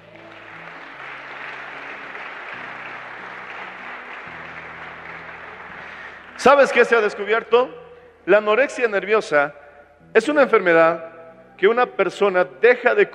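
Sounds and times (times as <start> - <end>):
church audience applauding: 0.0 - 7.2
speech: 6.4 - 13.1.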